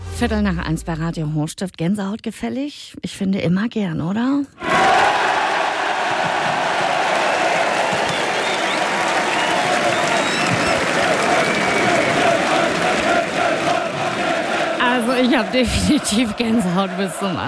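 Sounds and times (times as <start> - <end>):
speech: 0.2 - 5.0, 15.2 - 17.4
scattered shouts: 4.6 - 8.1, 9.1 - 17.4
large stadium crowd of football fans cheering and applauding: 4.6 - 17.4
crowd whistles: 7.7 - 12.5.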